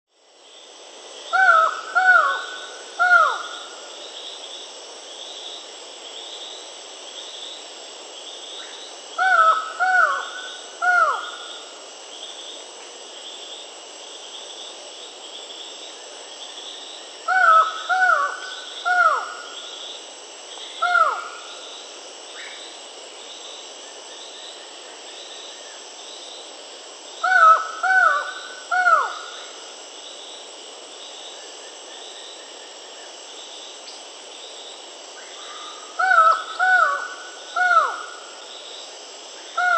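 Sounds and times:
Buckley's Forest-Falcon Micrastur buckleyi in Peru: 1.3 - 3.9, 8.6 - 11.7, 17.3 - 19.8, 20.6 - 22.7, 27.2 - 29.6, 35.2 - 38.6, 39.5 - 39.7.

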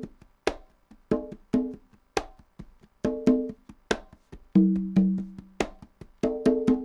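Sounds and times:
Latin congas at 140 bpm: 0.0 - 6.8.

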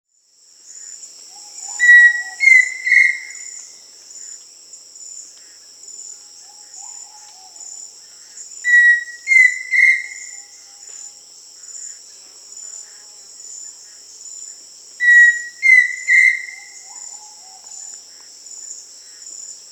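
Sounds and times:
Pheasant Cuckoo Dromococcyx phasianellus calling in Peru: 1.5 - 3.5, 8.7 - 10.5, 15.0 - 17.7.

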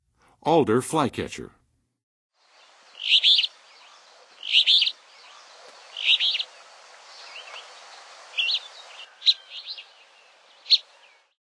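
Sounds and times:
Alder Flycatcher calling in Western USA: 2.4 - 11.4.

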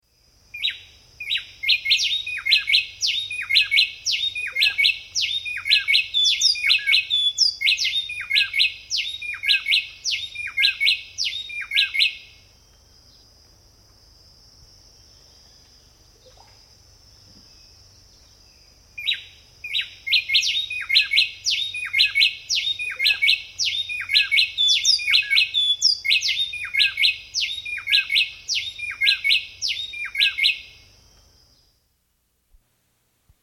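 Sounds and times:
bay wren singing: 0.6 - 12.3, 19.0 - 30.7.

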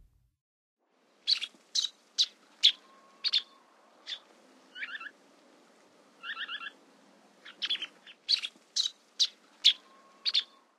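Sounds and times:
Semipalmated Sandpiper calling: 1.3 - 5.1, 6.1 - 10.6.

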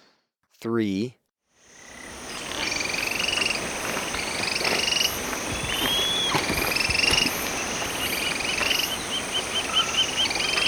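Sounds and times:
speech: 0.6 - 1.2
yellow tyrannulet calling in quick pulsed chatters in Ecuador: 2.1 - 10.6.

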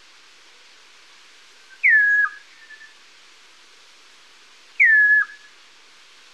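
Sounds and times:
Chestnut-crowned Antpitta whistle in Ecuador: 1.8 - 2.9, 4.8 - 5.5.

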